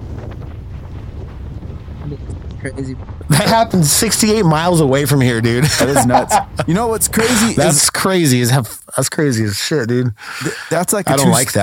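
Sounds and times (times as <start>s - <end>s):
strong wind roaring and buffeting the microphone outdoors during a wildfire: 0.0s - 7.9s
speech: 2.1s - 11.6s
laughter: 3.3s - 3.7s, 5.5s - 7.8s, 10.3s - 11.6s.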